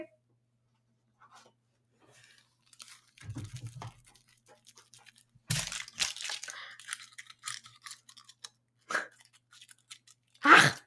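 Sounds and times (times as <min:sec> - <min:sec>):
chocolate bar wrapper rustling: 0:02.1 - 0:10.8
crunching and chewing a chocolate bar: 0:02.6 - 0:10.8.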